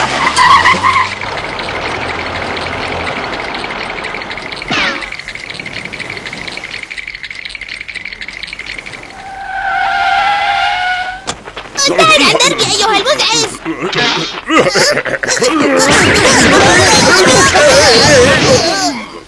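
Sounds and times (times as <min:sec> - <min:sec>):
car skidding with tire squeal: 0:00.0 - 0:01.3, 0:09.1 - 0:11.3
rattling car engine noise: 0:00.0 - 0:18.8
laughter: 0:13.5 - 0:18.8.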